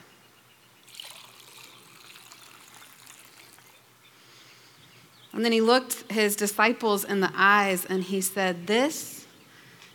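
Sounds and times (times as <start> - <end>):
liquid poured into a cup: 0.9 - 3.8
speech: 5.4 - 9.2.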